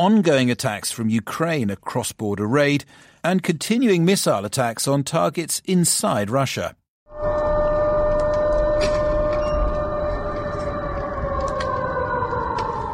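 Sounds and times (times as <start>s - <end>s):
speech: 0.0s - 7.3s
air raid siren wailing outdoors: 7.1s - 12.9s
rumbling background: 7.1s - 12.9s.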